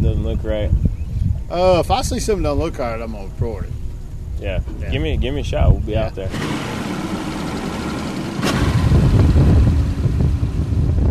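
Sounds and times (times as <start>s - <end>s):
speech: 0.2s - 3.8s, 4.4s - 7.0s
boat engine running on open water: 4.6s - 11.0s.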